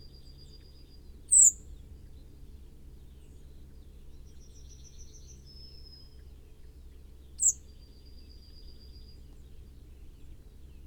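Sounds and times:
quiet low background hum: 0.0s - 10.8s
Common blackbird Turdus merula sharp high note and thin level whistle: 1.3s - 1.6s, 7.4s - 7.6s.

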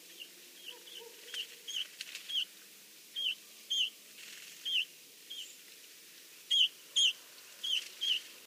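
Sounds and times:
steady low background hiss: 0.0s - 8.4s
Eurasian bullfinch Pyrrhula pyrrhula giving soft piping whistle calls: 0.1s - 2.5s, 3.1s - 4.0s, 4.6s - 5.6s, 6.5s - 8.3s.

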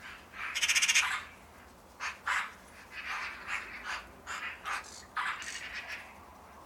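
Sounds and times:
Eurasian magpie Pica pica harsh rattling chatter and rasping notes: 0.4s - 1.4s, 2.0s - 6.1s.

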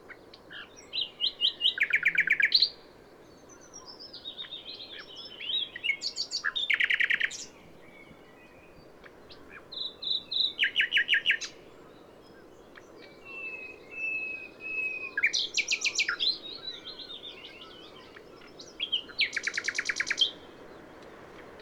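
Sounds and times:
steady low background noise: 0.0s - 21.6s
Common nightingale Luscinia megarhynchos singing varied phrases: 0.4s - 2.8s, 3.4s - 21.6s.

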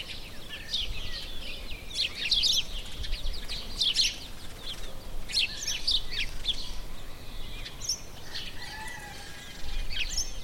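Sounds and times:
house sparrow Passer domesticus chattering: 0.0s - 10.4s.

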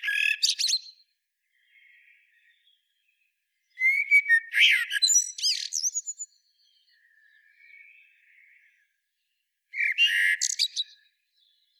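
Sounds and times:
Eurasian blackbird Turdus merula song with warbling and squeaky high notes: 0.0s - 11.7s.

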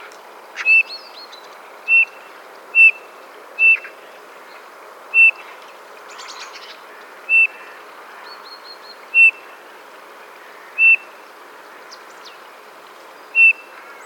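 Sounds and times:
Eurasian bullfinch Pyrrhula pyrrhula calling with mellow piping notes: 0.6s - 1.1s, 1.9s - 2.2s, 2.8s - 4.0s, 5.2s - 5.4s, 7.3s - 7.6s, 9.2s - 9.4s, 10.8s - 11.0s, 13.4s - 13.7s.

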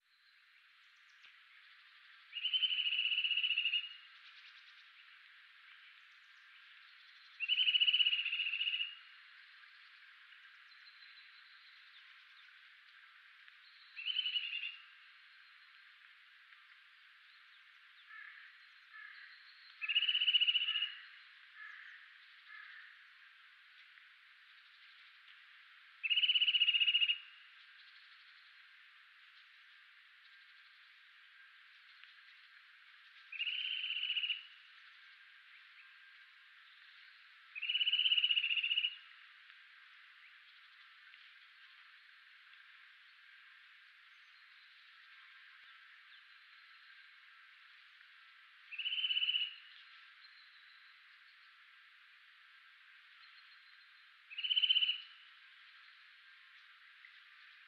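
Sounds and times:
Sitta europaea calling: 2.3s - 4.0s, 7.4s - 9.0s, 18.0s - 23.0s, 26.0s - 27.3s, 33.3s - 34.6s, 37.6s - 39.1s, 48.7s - 49.9s, 54.3s - 55.2s.

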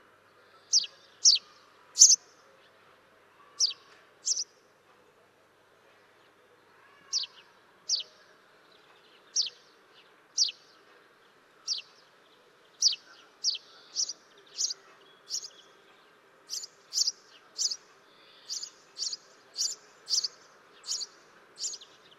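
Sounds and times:
soft background noise: 0.0s - 22.1s
house sparrow Passer domesticus chirping: 0.6s - 2.3s, 3.6s - 4.5s, 7.1s - 8.2s, 9.2s - 9.6s, 10.3s - 10.7s, 11.6s - 12.0s, 12.7s - 15.7s, 16.5s - 22.1s.

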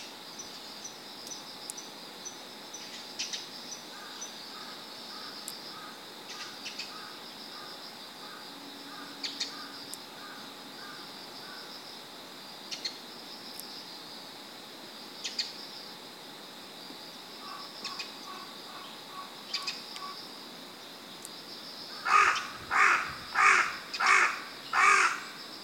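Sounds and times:
constant high insect drone: 0.0s - 25.6s
carrion crow Corvus corone cawing: 8.3s - 11.6s, 21.9s - 25.3s.

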